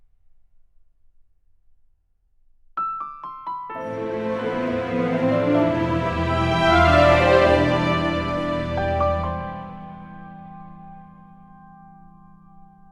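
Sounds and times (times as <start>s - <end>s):
orchestral music: 3.8s - 10.6s.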